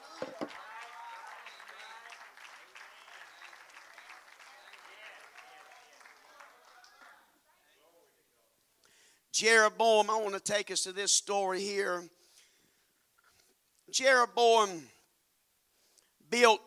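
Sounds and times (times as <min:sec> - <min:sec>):
crowd clapping: 0:00.0 - 0:07.4
speech: 0:09.4 - 0:12.2, 0:13.9 - 0:15.0, 0:16.3 - 0:16.6.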